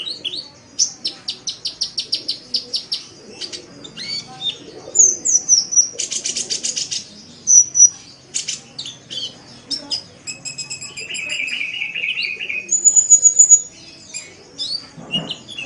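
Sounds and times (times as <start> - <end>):
Oriental magpie-robin song with chips, trills and whistles: 0.0 - 15.6.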